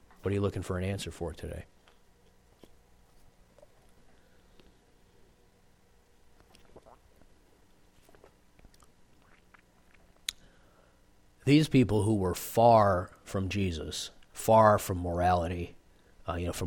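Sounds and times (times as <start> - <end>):
speech: 0.2 - 1.8, 11.5 - 16.6
person sipping water: 1.8 - 4.8, 6.4 - 10.6
soft mouth clicks: 6.4 - 7.3, 8.0 - 10.6
swallow: 6.4 - 7.4, 8.0 - 10.5.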